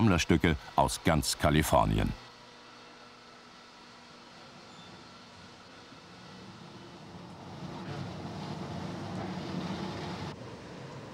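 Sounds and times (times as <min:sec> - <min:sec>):
speech: 0:00.0 - 0:02.2
historic streetcar rumbling along on its tracks: 0:06.7 - 0:11.1.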